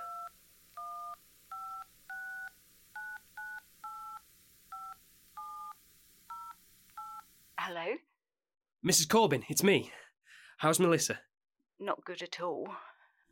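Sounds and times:
telephone number being dialed with DTMF tones: 0.0s - 7.3s
speech: 7.7s - 8.1s, 8.8s - 10.0s, 10.6s - 12.9s.

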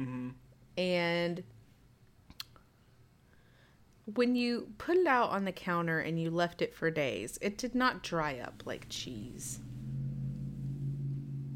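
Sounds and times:
speech: 0.0s - 1.6s, 4.1s - 9.8s
big truck passing by outside: 8.5s - 11.5s.

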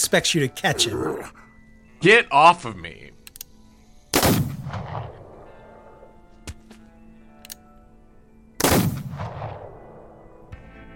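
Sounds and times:
speech: 0.0s - 1.4s, 2.0s - 3.1s
loud gunshots with long boom: 4.1s - 5.9s, 8.6s - 10.5s.

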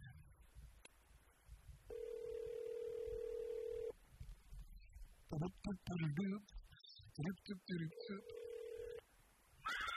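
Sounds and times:
low noise: 0.0s - 9.9s
ringback tones of an outgoing phone call: 1.9s - 3.9s, 7.9s - 9.0s
person speaking: 5.3s - 8.7s.

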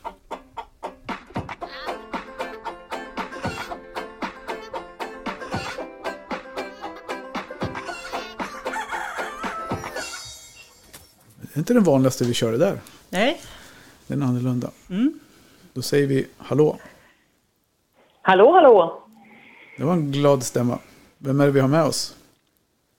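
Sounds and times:
hen clucking: 0.0s - 10.8s
speech: 11.6s - 13.5s, 14.1s - 15.2s, 15.8s - 16.9s, 18.3s - 19.0s, 19.8s - 22.2s.

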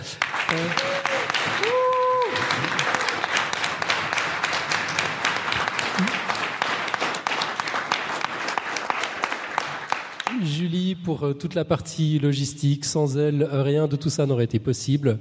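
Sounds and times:
large audience applauding: 0.0s - 10.6s
cheers and voices from audience: 0.7s - 3.1s
speech: 11.1s - 15.2s.

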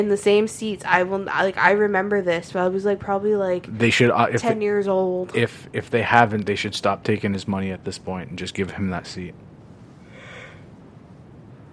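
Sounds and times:
speech: 0.0s - 9.5s
person yawning: 10.1s - 10.6s.

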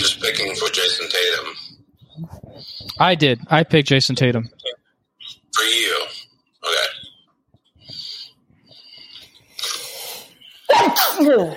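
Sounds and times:
speech: 0.4s - 2.4s, 3.0s - 4.6s, 5.6s - 6.9s, 10.8s - 11.5s
hissing building inhales: 7.8s - 10.7s
loud forceful sneeze: 10.7s - 11.5s.

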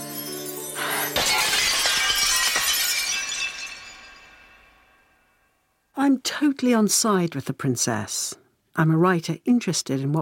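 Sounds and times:
tinkling glass shards: 0.0s - 5.2s
glass shattering: 0.8s - 5.5s
speech: 6.1s - 10.1s.

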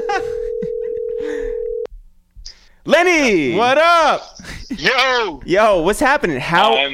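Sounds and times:
telephone dial tone: 0.4s - 1.9s
speech: 2.8s - 6.9s.

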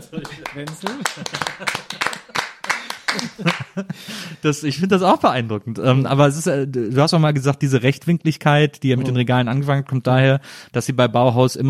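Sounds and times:
hand clapping: 0.0s - 3.9s
laughter: 0.0s - 4.4s
speech: 0.1s - 2.2s, 3.4s - 11.6s.

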